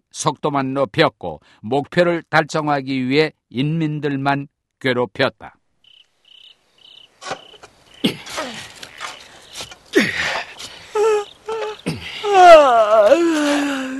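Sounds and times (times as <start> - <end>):
speech: 0.2 - 5.6, 7.2 - 7.4
person yawning: 10.0 - 13.9.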